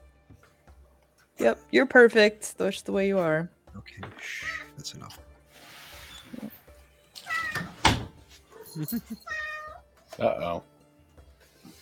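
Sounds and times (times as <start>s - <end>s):
speech: 1.4s - 5.3s, 8.8s - 9.4s, 10.2s - 10.7s
cats meowing: 4.1s - 4.7s, 7.2s - 7.8s, 9.2s - 9.9s.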